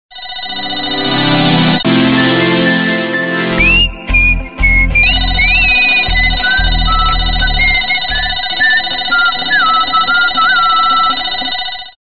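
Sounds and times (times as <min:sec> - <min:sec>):
remix music: 0:00.6 - 0:11.5.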